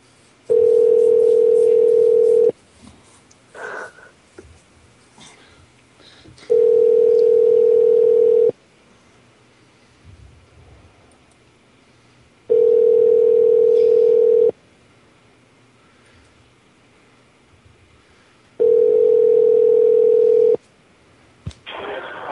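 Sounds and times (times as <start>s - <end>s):
phone line long steady ringback tones: 0.5s - 2.5s, 6.5s - 8.5s, 12.5s - 14.5s, 18.6s - 20.6s.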